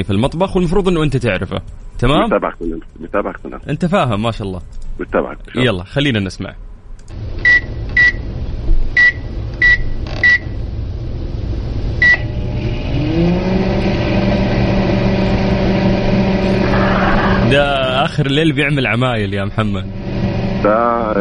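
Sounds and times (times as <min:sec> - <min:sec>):
speech: 0:00.0 - 0:07.6, 0:18.2 - 0:20.0, 0:20.6 - 0:21.1
microwave oven running with a low hum: 0:07.1 - 0:18.4, 0:19.4 - 0:21.1
microwave oven timer electronic beeps: 0:07.4 - 0:08.3, 0:09.0 - 0:10.6, 0:12.0 - 0:12.3.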